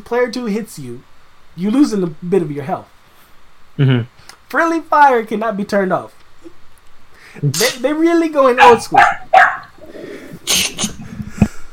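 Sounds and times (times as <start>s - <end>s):
speech: 0.1s - 2.9s, 3.8s - 6.6s, 7.3s - 9.4s
puppy barking: 8.6s - 9.8s.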